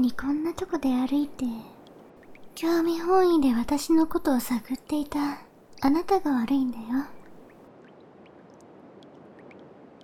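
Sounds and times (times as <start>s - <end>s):
speech: 0.0s - 1.7s, 2.6s - 7.2s
soft continuous watery wash: 0.0s - 10.0s
liquid dripping: 1.8s - 2.6s, 7.2s - 10.0s.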